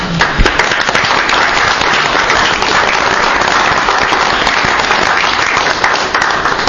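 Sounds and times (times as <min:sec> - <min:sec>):
sustained applause from a room full of people: 0:00.0 - 0:06.6.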